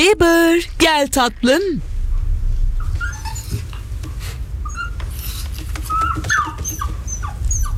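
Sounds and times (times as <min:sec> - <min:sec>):
speech: 0:00.0 - 0:01.9
steady low rumble of noise: 0:00.0 - 0:07.7
frightened traumatized dog whimpering and yelping: 0:02.8 - 0:07.7.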